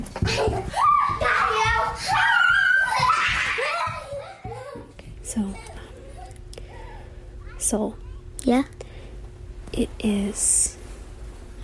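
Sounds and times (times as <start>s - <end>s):
young children laughing and giggling: 0.2s - 4.9s
speech: 7.7s - 8.8s, 9.8s - 10.7s.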